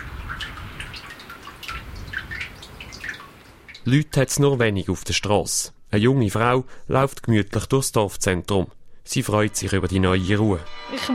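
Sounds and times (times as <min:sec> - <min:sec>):
water trickling through a street drain on a village main street: 0:00.0 - 0:04.2
speech: 0:03.8 - 0:11.1.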